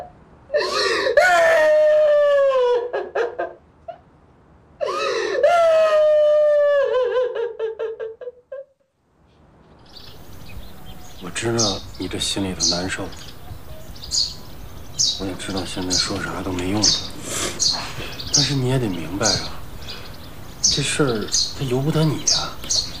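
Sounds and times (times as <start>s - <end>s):
person crying hard with wailing cries and sobs: 0.5s - 3.0s, 4.8s - 7.5s
speech: 12.1s - 13.3s, 15.3s - 17.2s, 18.4s - 19.5s, 20.7s - 22.6s.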